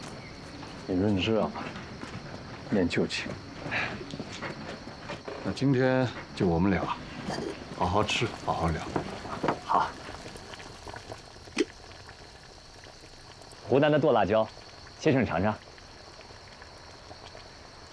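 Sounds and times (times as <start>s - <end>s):
pot of Cantonese hot pot broth bubbling and simmering in Guangzhou: 0.0s - 17.9s
people talking: 0.9s - 1.7s, 2.7s - 3.4s, 5.4s - 9.0s, 13.7s - 15.6s.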